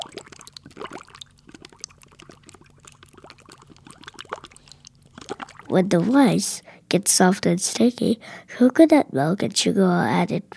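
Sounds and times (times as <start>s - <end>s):
water pouring into a pot to cook sweet rice: 0.0s - 5.8s
speech: 5.7s - 10.5s.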